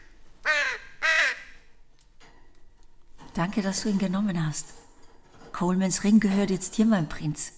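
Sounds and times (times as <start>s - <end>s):
crow cawing: 0.4s - 1.7s
speech: 3.4s - 4.8s, 5.6s - 7.5s.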